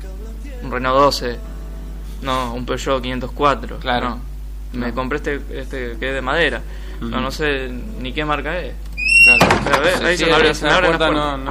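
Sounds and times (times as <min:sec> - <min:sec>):
speech: 0:00.7 - 0:01.5, 0:02.2 - 0:11.4
loose car door squeaking: 0:09.0 - 0:10.0.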